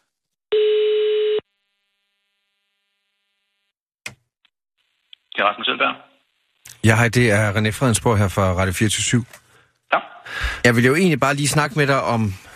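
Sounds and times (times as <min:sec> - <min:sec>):
telephone ringing tone of a call to a school: 0:00.5 - 0:01.4
speech: 0:05.4 - 0:06.1, 0:06.8 - 0:12.5.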